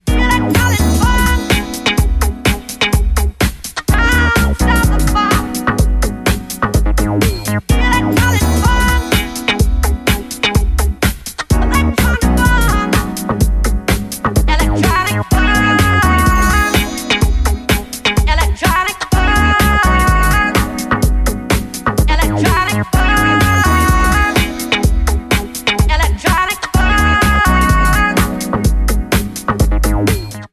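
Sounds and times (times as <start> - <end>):
electronic funk music: 0.0 - 30.5.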